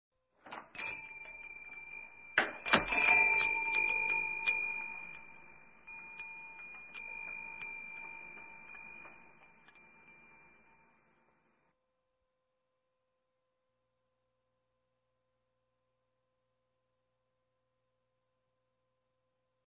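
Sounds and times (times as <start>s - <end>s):
small door bell ringing: 0.5s - 11.5s.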